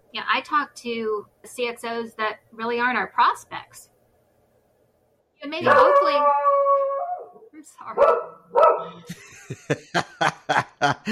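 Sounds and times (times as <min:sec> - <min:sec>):
speech: 0:00.1 - 0:03.9, 0:05.4 - 0:06.6, 0:07.6 - 0:11.0
dog yelping and barking: 0:05.6 - 0:07.4, 0:08.0 - 0:09.0
dog howling: 0:05.6 - 0:09.0
laughter: 0:09.1 - 0:11.0.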